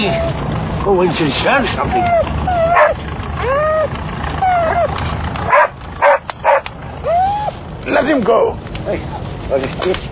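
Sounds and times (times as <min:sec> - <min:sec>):
dog whimpering in drawn-out whines: 0:00.0 - 0:00.4, 0:01.7 - 0:07.6
speech: 0:00.0 - 0:04.1, 0:07.9 - 0:10.1.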